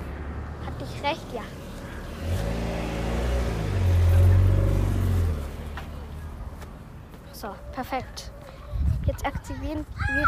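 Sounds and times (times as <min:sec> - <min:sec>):
car passing by: 0:00.0 - 0:06.3
speech: 0:00.8 - 0:01.6, 0:02.2 - 0:02.7, 0:07.4 - 0:08.4, 0:09.1 - 0:10.2.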